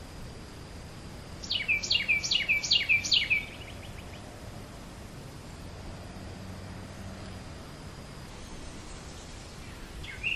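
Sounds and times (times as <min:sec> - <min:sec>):
bird chirps: 0:01.4 - 0:04.2, 0:09.6 - 0:10.3.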